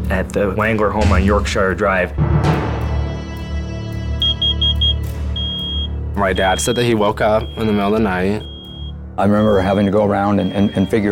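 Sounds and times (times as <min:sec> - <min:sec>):
speech: 0:00.1 - 0:02.7, 0:06.2 - 0:08.5, 0:09.2 - 0:11.0
carbon monoxide detector alarm in a house beeping: 0:04.2 - 0:11.0.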